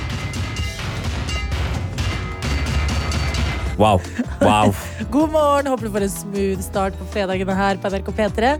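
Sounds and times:
metal oil drums being struck: 0.0s - 3.8s
laughter: 3.8s - 5.1s
speech: 3.8s - 8.5s.

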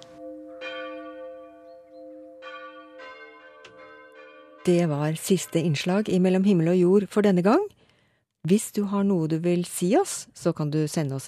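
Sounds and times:
church bells pealing: 0.0s - 6.1s
speech: 4.7s - 7.8s, 8.4s - 11.2s.

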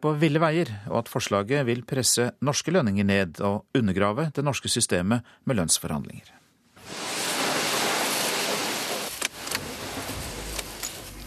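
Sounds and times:
speech: 0.0s - 7.0s
water spraying on a car in a car wash: 6.8s - 11.2s
low rumble: 9.4s - 11.2s.

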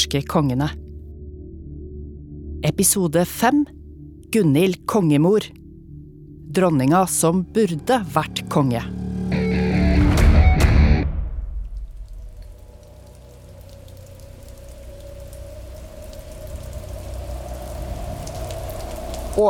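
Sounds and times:
speech: 0.0s - 0.8s, 2.6s - 5.6s, 6.5s - 9.0s
heavy rain pouring over a royal estate in northern Norway: 10.3s - 19.4s
sour spring wind howling and moaning: 11.7s - 19.4s.

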